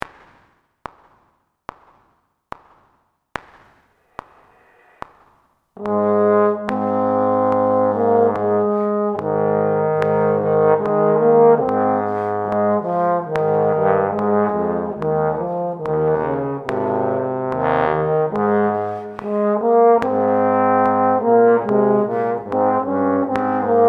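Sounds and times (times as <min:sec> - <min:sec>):
trombone playing A flat major: 0:05.8 - 0:23.8.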